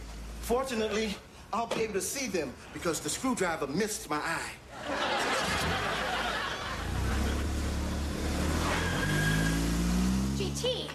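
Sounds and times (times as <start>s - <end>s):
speech: 0.5s - 5.3s
laughter: 4.7s - 7.6s
car engine revving and accelerating as the car pulls away: 5.4s - 10.9s.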